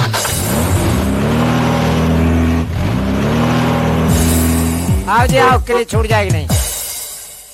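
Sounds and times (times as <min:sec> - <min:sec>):
car engine starting and revving: 0:00.0 - 0:05.6
speech: 0:05.2 - 0:06.6.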